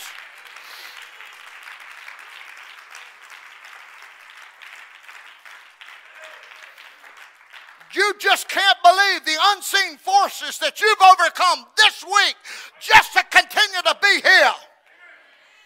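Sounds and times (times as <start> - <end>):
audience applause: 0.0 - 8.6
speech: 7.9 - 14.7.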